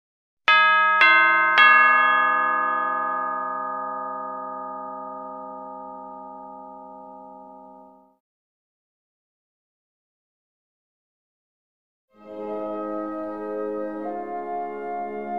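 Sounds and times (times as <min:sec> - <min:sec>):
doorbell chiming: 0:00.5 - 0:08.2.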